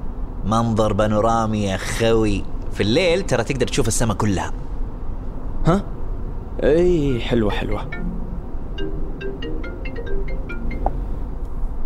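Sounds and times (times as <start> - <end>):
speech: 0.4 - 4.6, 5.6 - 5.9, 6.6 - 8.1
phone ringtone of an incoming call inside a car: 7.6 - 11.4.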